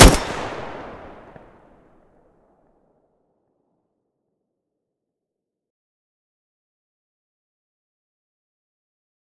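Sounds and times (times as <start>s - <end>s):
Groza rifle gunshot: 0.0s - 1.4s.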